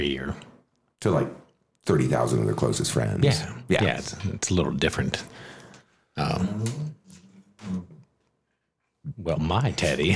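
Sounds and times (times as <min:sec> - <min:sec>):
speech: 0:00.0 - 0:05.5, 0:06.2 - 0:07.0, 0:07.6 - 0:07.9, 0:09.0 - 0:10.1
dog moaning: 0:06.3 - 0:08.1.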